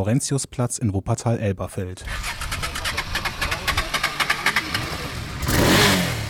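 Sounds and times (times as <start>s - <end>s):
speech: 0.0s - 2.4s
motorcycle engine starting and revving at a motorcycle blessing: 2.0s - 6.2s.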